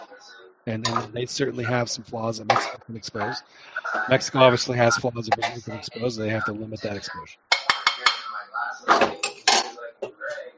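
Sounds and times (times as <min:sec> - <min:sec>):
speech: 0:00.6 - 0:07.6
cutlery clinking against dishes during a late dinner: 0:00.8 - 0:01.1, 0:07.5 - 0:10.2
scraping and clattering of plates and utensils: 0:00.8 - 0:01.2, 0:02.5 - 0:03.4, 0:05.3 - 0:05.8, 0:07.5 - 0:10.4.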